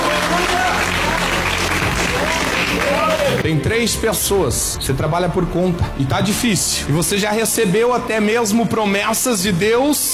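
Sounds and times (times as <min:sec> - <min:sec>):
church audience applauding: 0:00.0 - 0:03.4
speech: 0:03.5 - 0:10.1.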